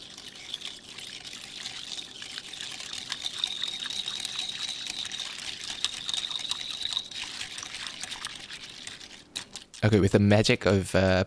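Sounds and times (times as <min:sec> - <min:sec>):
coffee mixture being whisked in a bowl: 0:00.0 - 0:10.0
speech: 0:09.8 - 0:11.2.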